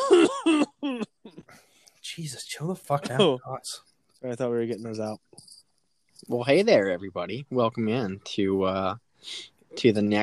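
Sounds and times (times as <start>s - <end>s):
person coughing with a rough throaty voice: 0.0s - 1.4s, 3.0s - 3.4s
speech: 2.2s - 5.5s, 6.2s - 10.2s.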